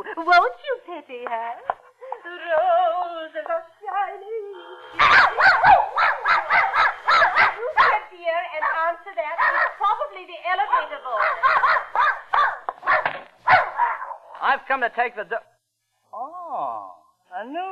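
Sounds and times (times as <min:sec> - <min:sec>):
speech: 0:00.0 - 0:04.3, 0:14.6 - 0:15.5
dog whining: 0:04.9 - 0:08.0, 0:08.6 - 0:09.8, 0:10.7 - 0:14.3
dog barking: 0:05.0 - 0:10.0, 0:10.7 - 0:14.2.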